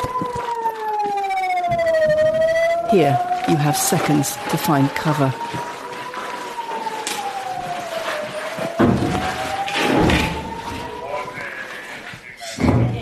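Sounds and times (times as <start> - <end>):
air raid siren wailing: 0.0 - 12.2
faint rumbling noise: 0.0 - 12.9
speech: 2.9 - 5.7
voices: 10.6 - 12.9.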